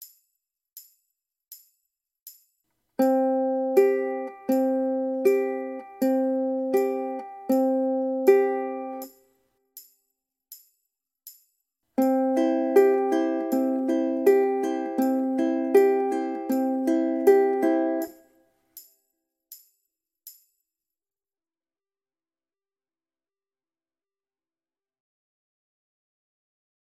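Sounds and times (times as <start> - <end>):
ukulele alternate thumb picking: 3.0 - 9.1, 12.0 - 18.2.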